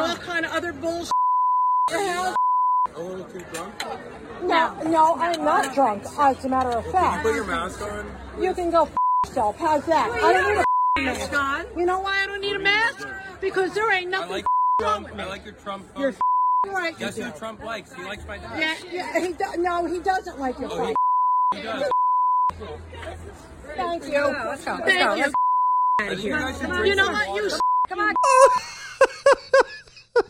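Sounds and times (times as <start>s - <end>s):
speech: 0.6s - 1.2s, 1.9s - 21.9s, 22.5s - 25.4s, 26.0s - 29.7s
censor bleeps at a single pitch: 1.1s - 2.9s, 9.0s - 9.3s, 10.6s - 11.1s, 14.4s - 14.9s, 16.2s - 16.7s, 20.9s - 22.6s, 25.3s - 26.1s, 27.6s - 28.6s
laughter: 28.1s - 30.2s.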